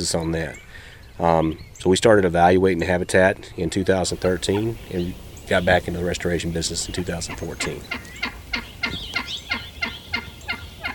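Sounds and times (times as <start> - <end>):
speech: 0.0 - 8.6
eastern wild turkey gobbling: 4.1 - 10.9.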